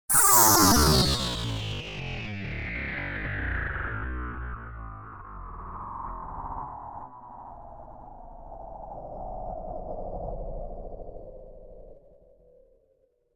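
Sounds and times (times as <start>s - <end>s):
spaceship passing by: 0.1s - 5.3s.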